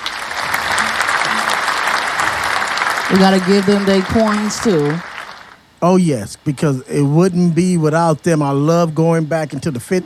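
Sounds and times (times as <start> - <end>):
crowd applauding: 0.0 - 5.6
speech: 3.1 - 5.1, 5.8 - 10.0.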